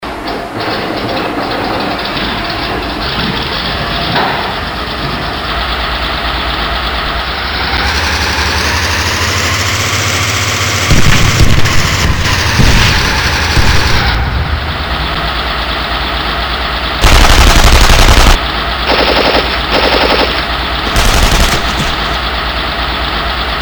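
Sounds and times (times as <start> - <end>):
model Tiger tank: 0.1 - 23.6.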